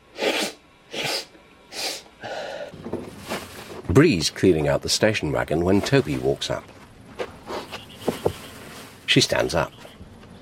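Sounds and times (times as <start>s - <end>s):
man drawing a long sniffing inhale: 0.1s - 2.8s
man snorting cocaine in a men's room: 0.1s - 2.8s
speech: 4.0s - 6.8s, 9.2s - 9.9s.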